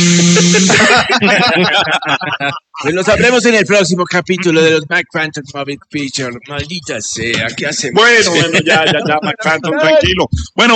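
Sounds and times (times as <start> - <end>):
blender whirring and grinding: 0.0 - 0.8
laughter: 0.3 - 5.0, 6.0 - 10.6
speech: 0.7 - 10.7.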